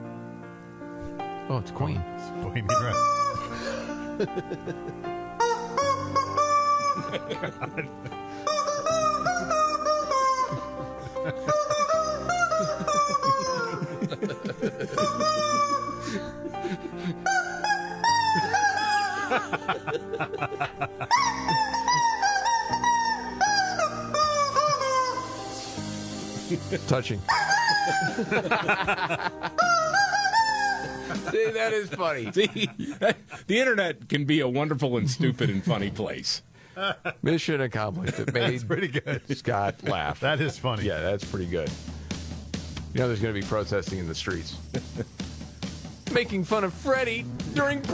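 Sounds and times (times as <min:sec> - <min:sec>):
speech: 0:01.5 - 0:05.2, 0:07.1 - 0:09.7, 0:19.3 - 0:21.8, 0:26.7 - 0:29.6, 0:31.3 - 0:42.0, 0:42.9 - 0:45.1, 0:46.1 - 0:47.9
rubber chicken squeezed, squealing and honking a tune: 0:02.7 - 0:03.6, 0:05.4 - 0:07.7, 0:08.4 - 0:13.9, 0:14.8 - 0:16.2, 0:17.2 - 0:19.6, 0:21.0 - 0:25.9, 0:27.2 - 0:28.5, 0:29.6 - 0:31.4
laughter: 0:03.3 - 0:05.1, 0:06.5 - 0:17.4, 0:18.0 - 0:23.0, 0:26.4 - 0:33.6, 0:35.0 - 0:36.2, 0:36.8 - 0:41.0, 0:44.6 - 0:45.2
loud full-band music backing track: 0:44.6 - 0:46.2.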